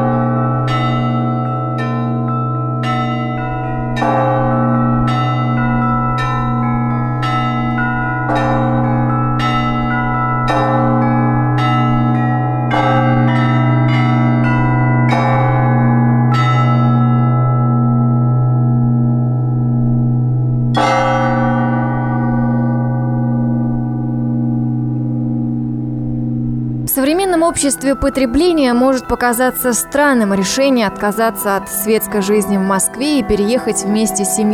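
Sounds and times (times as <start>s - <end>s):
church bells rung by a bell ringer: 0.0s - 34.5s
speech: 27.5s - 34.5s.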